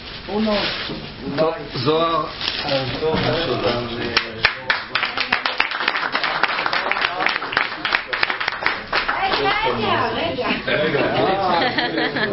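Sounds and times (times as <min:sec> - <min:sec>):
speech: 0:00.3 - 0:04.6
hand clapping from several people: 0:04.1 - 0:09.9
laughter: 0:10.5 - 0:12.3.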